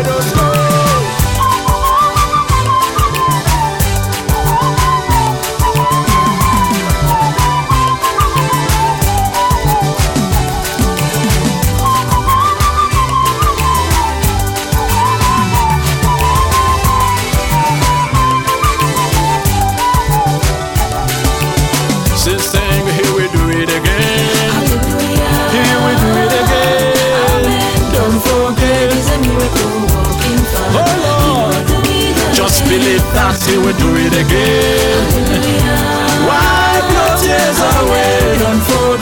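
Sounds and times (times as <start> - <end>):
full loud band with thumping bass and drums: 0.0 - 39.0
whistled hymn melody: 0.0 - 39.0.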